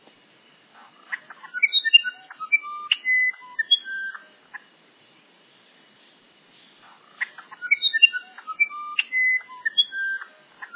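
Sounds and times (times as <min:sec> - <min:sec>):
Musician wren flute-like song: 0:01.4 - 0:04.3, 0:06.8 - 0:10.7.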